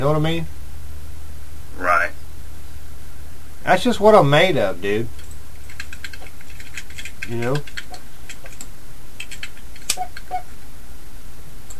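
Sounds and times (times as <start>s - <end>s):
speech: 0.0s - 0.6s, 3.6s - 5.2s, 7.3s - 7.8s
steady hiss: 0.0s - 11.7s
keyboard typing clicks: 5.2s - 10.5s.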